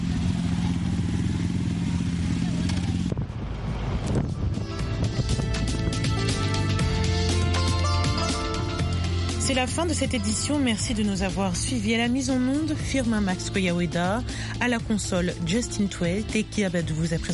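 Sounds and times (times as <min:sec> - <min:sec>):
motorcycle engine rumbling and roaring: 0:00.0 - 0:17.3
gusts of wind noise: 0:03.0 - 0:06.4
speech: 0:09.5 - 0:17.3.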